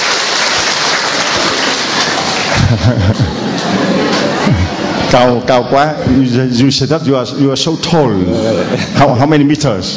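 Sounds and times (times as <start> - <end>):
sizable crowd applauding: 0.0 - 5.0
laughter: 2.3 - 5.1, 8.1 - 9.2
speech: 2.7 - 3.9, 5.1 - 9.9.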